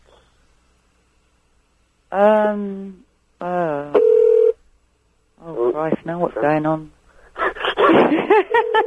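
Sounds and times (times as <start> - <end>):
speech: 2.1 - 4.0, 5.8 - 7.0, 7.9 - 8.8
buzzy electronic telephone tones: 3.8 - 4.6, 8.2 - 8.8.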